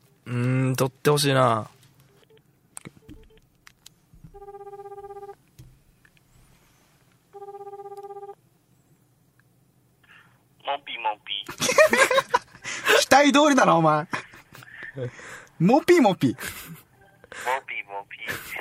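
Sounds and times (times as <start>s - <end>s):
speech: 0.3s - 1.8s, 13.4s - 14.2s, 15.0s - 16.6s
outgoing phone call buzzing ringback tones: 4.4s - 5.4s, 7.3s - 8.4s
laughter: 11.5s - 13.1s.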